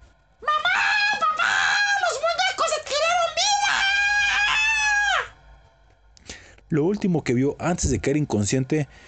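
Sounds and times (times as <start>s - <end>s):
terrified child screaming: 0.4s - 5.4s
speech: 6.7s - 9.0s.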